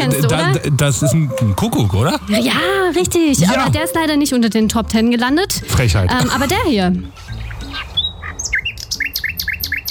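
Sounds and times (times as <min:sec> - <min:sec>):
speech: 0:00.1 - 0:07.3
nightingale song: 0:07.0 - 0:09.8.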